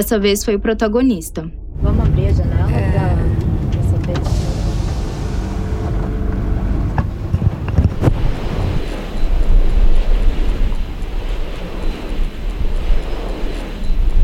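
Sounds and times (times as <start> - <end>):
speech: 0.0 - 3.2
gusty wind: 0.0 - 14.2
150-metre-tall wind turbine with 64-metre blades at a hybrid complex in Santa Luzia: 1.7 - 14.2
sharp clicks and thumps: 1.8 - 13.0.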